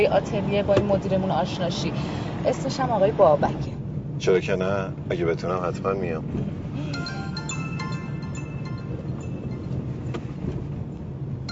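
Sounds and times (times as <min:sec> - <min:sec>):
speech: 0:00.0 - 0:07.0
moving car's road and engine noise: 0:00.0 - 0:11.5
mobile phone ringtone for an incoming call: 0:06.8 - 0:10.1.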